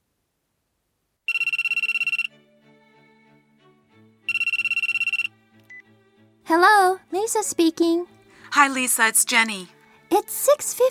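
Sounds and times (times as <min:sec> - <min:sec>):
cell phone ringtone: 0:01.3 - 0:02.4, 0:04.3 - 0:05.8
speech: 0:06.5 - 0:10.8.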